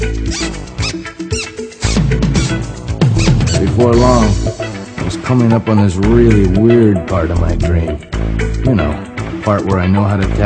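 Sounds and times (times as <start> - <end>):
dense brassy music with horns: 0.0 - 9.2
shoes squeaking as someone walks near a lake: 0.3 - 3.7
speech: 3.8 - 4.4, 5.3 - 10.4.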